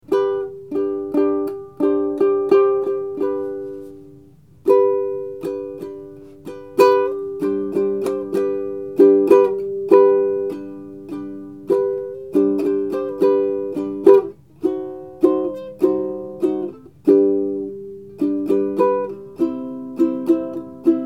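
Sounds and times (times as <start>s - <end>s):
ukulele slow strum: 0.1s - 21.0s.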